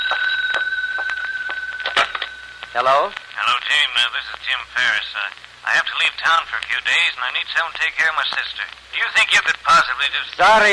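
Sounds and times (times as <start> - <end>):
telephone bell ringing in a metallic trill: 0.0 - 3.0
speech: 2.8 - 10.7.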